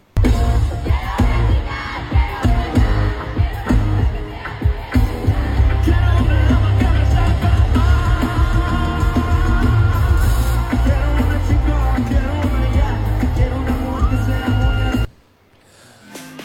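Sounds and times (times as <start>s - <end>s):
live concert crowd roaring: 0.2s - 15.1s
pounding live concert music: 0.2s - 15.1s
singer's raw heavy-metal-style scream at a live concert: 5.7s - 15.1s.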